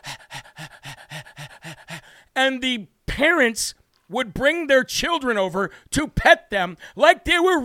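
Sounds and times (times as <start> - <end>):
person's voice mimicking a dog's panting: 0.0 - 2.2
speech: 2.4 - 7.6.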